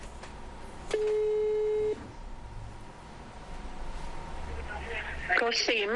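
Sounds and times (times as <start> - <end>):
quiet phone line noise: 0.0 - 5.9
telephone ringback tone on a phone line: 0.9 - 2.0
speech: 5.5 - 5.9.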